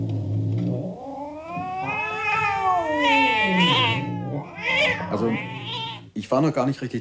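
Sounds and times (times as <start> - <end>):
cats screeching and yowling while attacking: 0.9 - 6.1
speech: 6.3 - 6.9.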